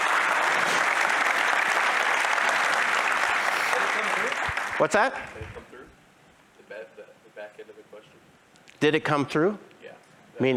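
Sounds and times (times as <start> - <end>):
audience applause: 0.0 - 5.6
speech: 4.8 - 5.6, 8.8 - 9.7.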